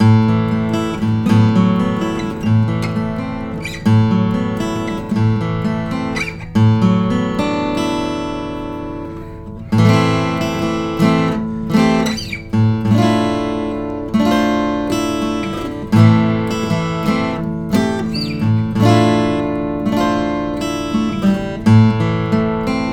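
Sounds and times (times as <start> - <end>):
Martin 000 28VS guitar: 0.0 - 22.9.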